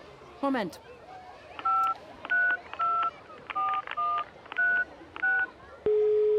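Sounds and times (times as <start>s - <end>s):
speech: 0.4s - 1.0s
mobile phone number being dialed with DTMF tones among bathers: 1.6s - 6.3s
sustained phone tone: 5.9s - 6.3s.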